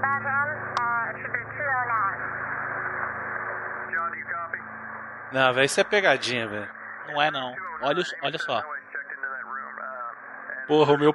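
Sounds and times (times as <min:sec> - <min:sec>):
band-limited crackly radio transmission with garbled voice-like warbles: 0:00.0 - 0:11.1
steady low hum: 0:00.0 - 0:11.1
speech: 0:05.3 - 0:08.8, 0:10.7 - 0:11.1.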